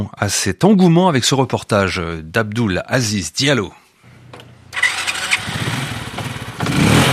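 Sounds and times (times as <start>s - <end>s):
speech: 0.0s - 3.8s
motorcycle engine starting, idling and revving in Bouaké, Côte d'Ivoire: 4.4s - 7.1s.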